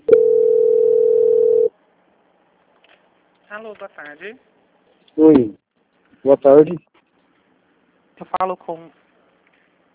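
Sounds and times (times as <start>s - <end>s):
telephone line tone while a call is transferred: 0.0s - 1.7s
speech: 3.5s - 4.6s, 5.2s - 5.6s, 6.2s - 6.9s, 8.2s - 9.0s.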